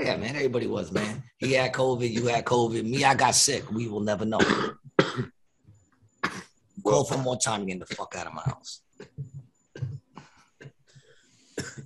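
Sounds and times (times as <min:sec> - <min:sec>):
speech: 0:00.0 - 0:05.4, 0:06.8 - 0:09.3
harsh raspy coughs: 0:00.9 - 0:03.2, 0:04.4 - 0:05.4, 0:06.2 - 0:08.2, 0:09.0 - 0:10.8, 0:11.5 - 0:11.8.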